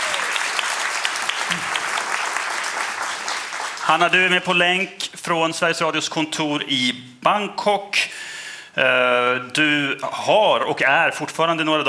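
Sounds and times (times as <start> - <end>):
audience clapping in a lecture hall: 0.0 - 4.6
speech: 1.5 - 1.7, 3.9 - 8.2, 8.8 - 11.8.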